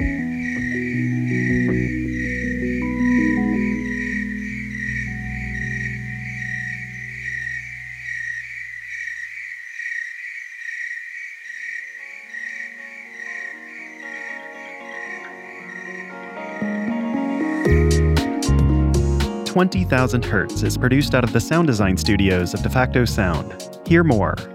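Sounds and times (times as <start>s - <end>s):
soft held musical chords: 0.0s - 8.5s, 12.7s - 24.5s
tree crickets singing at night: 0.0s - 17.6s
speech: 19.6s - 24.5s.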